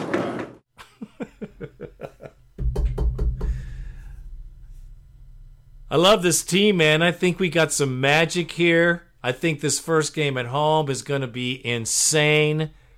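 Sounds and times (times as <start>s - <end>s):
laughter: 0.1s - 2.5s
dense noisy rumble: 1.4s - 12.9s
low rumble: 2.3s - 7.5s
deep loud thud: 2.5s - 6.1s
speech: 5.9s - 12.8s.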